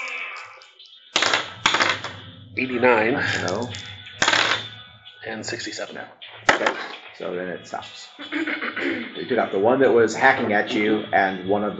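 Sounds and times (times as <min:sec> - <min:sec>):
percentile dice clattering: 0:01.2 - 0:02.2, 0:03.3 - 0:04.7
speech: 0:02.6 - 0:03.9, 0:05.2 - 0:11.7
laughter: 0:08.2 - 0:09.4.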